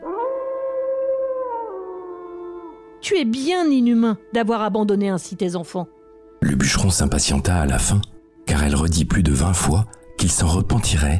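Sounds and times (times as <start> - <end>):
wolf howling: 0.0 - 2.9
speech: 3.0 - 8.1, 8.7 - 11.1.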